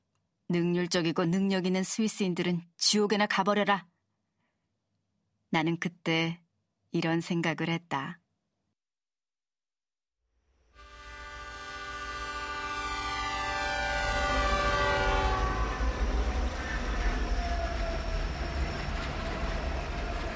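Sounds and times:
speech: 0:00.5 - 0:03.9, 0:05.5 - 0:08.2
loud sustained train horn blaring: 0:10.8 - 0:17.8
heavy rumble of a train from Rotterdam on the rails through Germany into Switzerland: 0:11.1 - 0:20.3.

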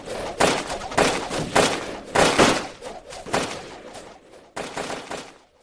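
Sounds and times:
rapid chaotic volley of matchlock musket fire: 0:00.4 - 0:05.4.

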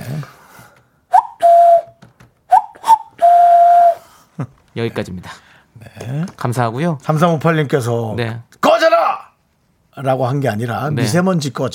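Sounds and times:
person whistling an imitation of a cuckoo call: 0:01.1 - 0:04.0
speech: 0:04.4 - 0:08.5, 0:10.0 - 0:11.7.

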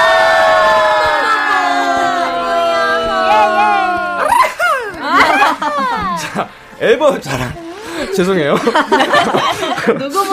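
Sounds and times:
several voices shouting and cheering an album announcement: 0:00.0 - 0:06.4
laughter: 0:01.2 - 0:10.3
speech: 0:06.4 - 0:10.3.

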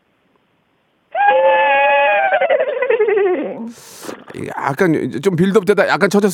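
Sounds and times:
person imitating a horse neigh: 0:01.1 - 0:04.5
breathy exhale: 0:03.6 - 0:04.4
speech: 0:03.7 - 0:06.3.

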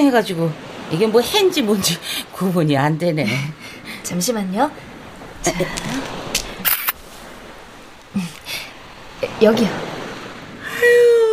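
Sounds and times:
speech: 0:00.0 - 0:06.3, 0:08.2 - 0:08.4, 0:09.3 - 0:09.9
camera shutter clicks photographing the sun: 0:06.6 - 0:07.0.

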